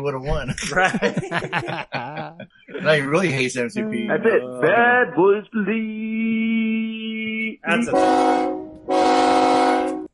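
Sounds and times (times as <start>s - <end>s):
speech: 0.0s - 6.4s, 7.7s - 9.2s
laughter: 0.2s - 5.3s
loud train horn blasts: 7.9s - 10.1s.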